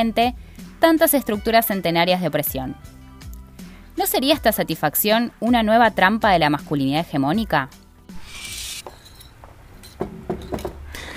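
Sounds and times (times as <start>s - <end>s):
speech: 0.0s - 3.0s, 4.0s - 7.8s
dishes and glasses clinking in a sink during washing up: 8.8s - 10.9s.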